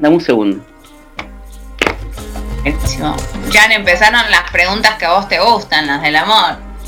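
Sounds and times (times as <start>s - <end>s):
speech: 0.0s - 0.7s, 2.6s - 6.6s
deck of tarot cards being shuffled: 1.2s - 2.1s.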